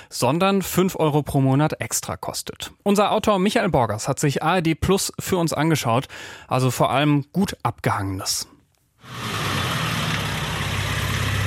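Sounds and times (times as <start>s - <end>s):
speech: 0.1s - 8.5s
car engine running: 9.1s - 11.4s.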